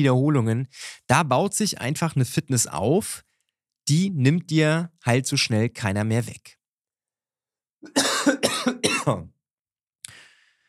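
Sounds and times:
speech: 0:00.0 - 0:06.6, 0:07.8 - 0:08.4
person coughing harshly: 0:07.9 - 0:09.3.

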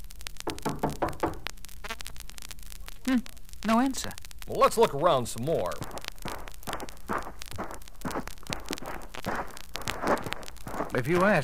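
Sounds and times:
knocking on a wooden house door in a village: 0:00.5 - 0:01.4
speech: 0:03.1 - 0:06.0, 0:11.0 - 0:11.4.

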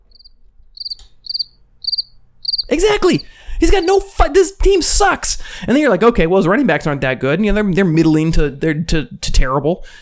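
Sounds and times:
crickets chirping in high trills: 0:00.0 - 0:04.2
speech: 0:02.7 - 0:10.0.

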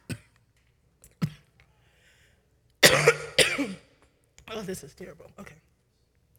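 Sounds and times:
person coughing from a tickle in the throat: 0:01.2 - 0:01.5, 0:02.8 - 0:03.9
speech: 0:04.6 - 0:05.6.

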